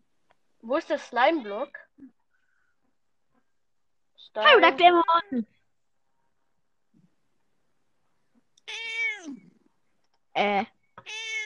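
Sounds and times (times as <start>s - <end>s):
speech: 0.6s - 2.2s, 4.2s - 5.6s, 10.4s - 11.3s
cat meowing: 8.6s - 9.5s, 11.0s - 11.4s.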